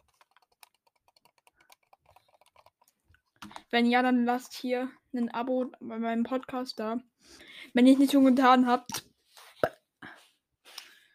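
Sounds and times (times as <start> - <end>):
computer mouse clicking: 0.0 - 3.6
speech: 3.4 - 9.0.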